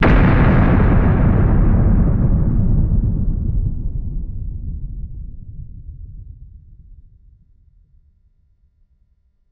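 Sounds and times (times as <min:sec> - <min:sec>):
atomic explosion with long echo: 0:00.0 - 0:05.6.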